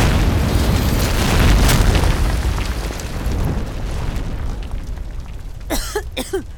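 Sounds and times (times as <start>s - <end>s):
gas explosion from Bunsen burner jets in a laboratory: 0.0s - 5.2s.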